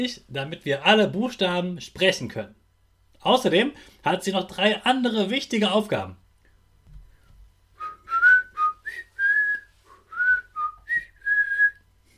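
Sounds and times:
speech: 0.0 - 2.6, 3.2 - 6.2
person whistling a short clear melody: 7.8 - 11.8.

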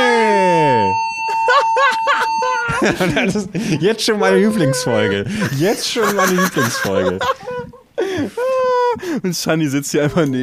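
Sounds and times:
wailing alarm sweep falling in pitch: 0.0 - 3.3
alarm steady high tone: 0.0 - 5.3
laughter: 1.2 - 9.4
speech: 2.8 - 7.5, 9.0 - 10.4.

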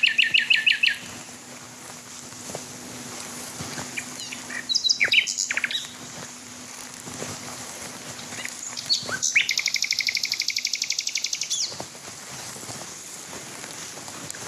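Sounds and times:
male Common Nightingale singing on a still night in fields: 0.0 - 1.2, 3.9 - 6.0, 8.3 - 11.8
steady low hum: 0.0 - 14.4.

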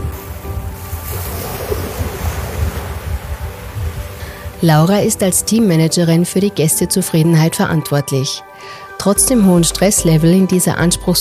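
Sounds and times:
wind buffeting the microphone: 0.0 - 5.9
Indian Ocean surf rolling onto the coast of Zanzibar at sunrise: 0.0 - 6.7
speech: 4.6 - 11.1.

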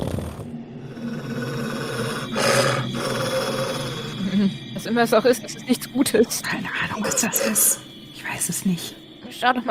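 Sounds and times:
creature growling: 0.8 - 4.5, 7.0 - 7.8
speech: 4.4 - 9.6.

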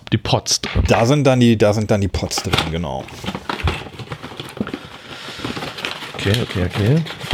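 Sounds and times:
speech: 0.1 - 3.4, 6.2 - 7.3
small box packaging rustling and crinkling while pods are unpacked: 2.2 - 7.3.

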